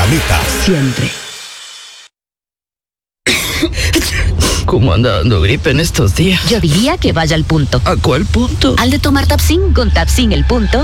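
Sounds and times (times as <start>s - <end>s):
speech: 0.1s - 1.2s, 4.7s - 10.8s
person coughing: 3.3s - 4.7s.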